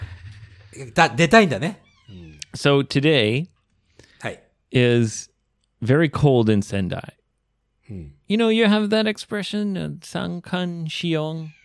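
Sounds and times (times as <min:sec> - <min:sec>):
speech: 0:00.8 - 0:03.5, 0:04.2 - 0:07.2, 0:07.9 - 0:11.6
cat meowing: 0:01.8 - 0:02.6.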